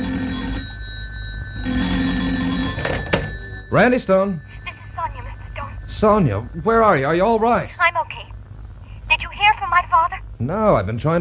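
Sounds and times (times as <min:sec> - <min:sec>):
telephone bell ringing: 0:00.0 - 0:07.5
speech: 0:03.7 - 0:04.5, 0:06.0 - 0:08.1, 0:10.0 - 0:11.2.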